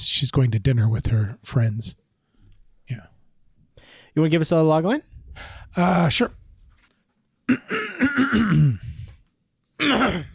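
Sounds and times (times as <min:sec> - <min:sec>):
speech: 0:00.2 - 0:02.0, 0:02.9 - 0:03.1, 0:04.2 - 0:06.4, 0:07.5 - 0:08.9, 0:09.8 - 0:10.3
person clearing throat in an exaggerated voiced way: 0:07.5 - 0:09.0, 0:09.8 - 0:10.3.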